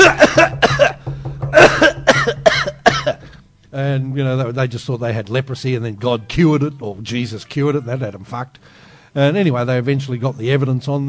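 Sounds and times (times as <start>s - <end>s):
person fake coughing: 0.0s - 3.4s
faint steady hum: 0.0s - 11.0s
speech: 4.5s - 11.0s.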